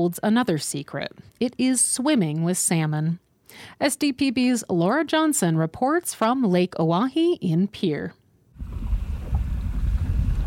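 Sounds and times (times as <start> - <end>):
speech: 0.0 - 8.2
wind blowing across a lake on an evening: 8.6 - 10.4.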